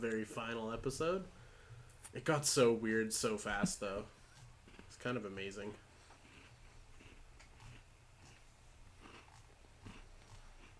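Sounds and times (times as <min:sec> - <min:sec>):
speech: 0:00.0 - 0:01.4, 0:02.1 - 0:04.2, 0:04.9 - 0:05.8
munching on a crunchy chocolate biscuit: 0:04.3 - 0:10.7.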